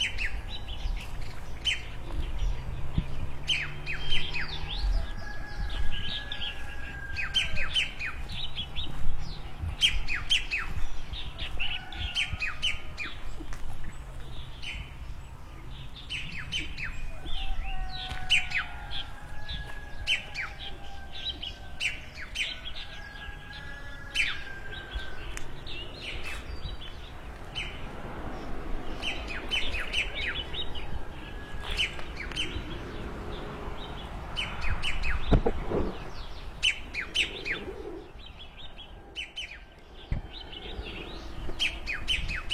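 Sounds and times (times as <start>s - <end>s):
small birds chirping: 0.0s - 42.5s
rooster crowing: 4.8s - 8.0s, 17.0s - 25.8s, 29.3s - 33.0s.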